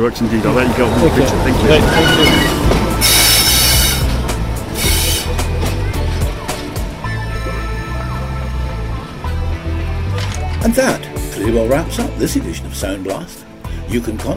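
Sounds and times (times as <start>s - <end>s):
speech: 0.0s - 3.2s, 10.6s - 14.3s
steam train rumbling: 0.0s - 9.3s
steam train chuffs: 0.1s - 7.1s.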